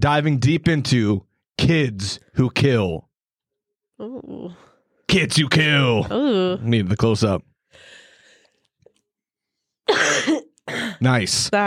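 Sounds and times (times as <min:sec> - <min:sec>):
speech: 0:00.0 - 0:03.1, 0:04.0 - 0:08.0, 0:09.9 - 0:11.6
single harsh two-part cough: 0:09.9 - 0:11.0.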